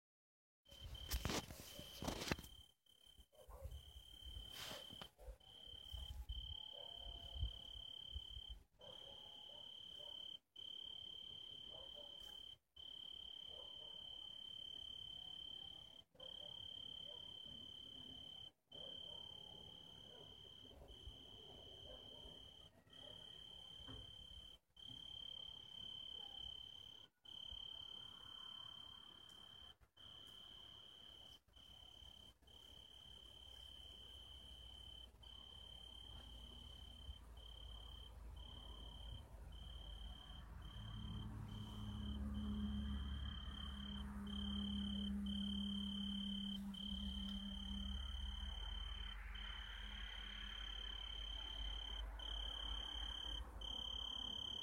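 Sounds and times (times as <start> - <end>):
Oecanthus pellucens tree cricket chirping: 0.7 - 54.6.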